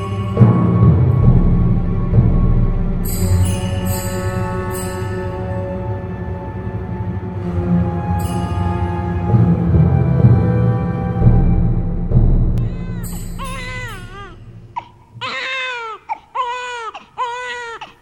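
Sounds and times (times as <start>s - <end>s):
low rumbling: 0.2s - 15.2s
infant crying late at night: 12.6s - 17.9s.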